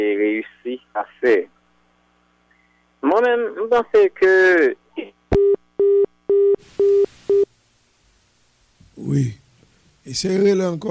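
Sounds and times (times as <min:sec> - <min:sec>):
speech: 0:01.2 - 0:01.5, 0:03.0 - 0:04.8, 0:09.0 - 0:09.4, 0:10.1 - 0:10.8
telephone busy tone after a dropped call: 0:05.4 - 0:07.5
faint hiss on a telephone line: 0:06.6 - 0:10.8.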